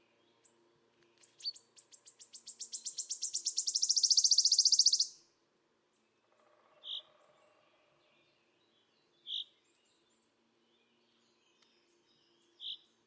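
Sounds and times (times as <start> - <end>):
soft bird chirp: 0.0 - 5.2, 6.0 - 13.0
wood warbler Phylloscopus sibilatrix song with ticking and trill: 1.3 - 5.2.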